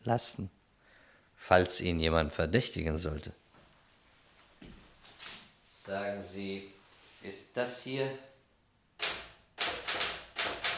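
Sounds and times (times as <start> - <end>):
speech: 0.0 - 0.6, 1.4 - 3.4, 5.9 - 8.3
Remington typewriter keys clacking: 9.0 - 10.7.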